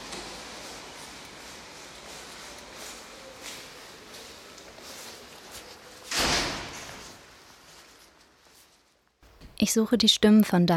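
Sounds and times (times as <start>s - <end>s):
faint rustling: 0.9s - 9.6s
wooden building door closing with a solid thud: 6.1s - 7.0s
speech: 9.6s - 10.7s.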